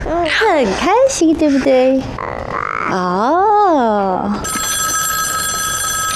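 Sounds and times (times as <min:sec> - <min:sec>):
speech: 0:00.5 - 0:02.3, 0:02.9 - 0:04.6
telephone ringing with a bright electronic tone: 0:04.4 - 0:06.1.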